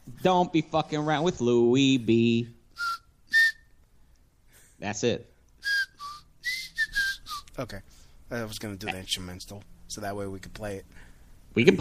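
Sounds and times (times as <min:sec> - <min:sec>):
speech: 0:00.2 - 0:02.6, 0:04.8 - 0:05.3, 0:07.6 - 0:11.7
person whistling a short song melody: 0:02.8 - 0:03.8, 0:05.6 - 0:07.6.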